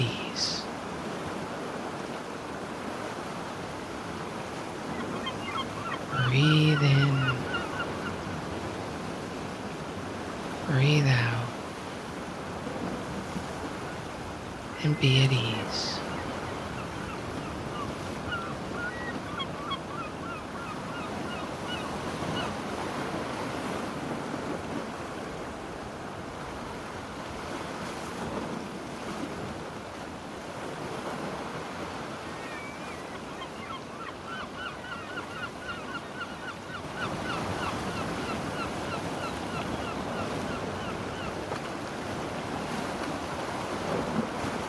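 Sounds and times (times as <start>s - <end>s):
ocean waves breaking on the beach: 0.0s - 44.6s
faint bird-like calls: 4.8s - 8.4s, 14.8s - 22.6s, 32.3s - 41.6s
speech: 6.3s - 7.1s, 10.8s - 11.4s, 14.8s - 16.0s.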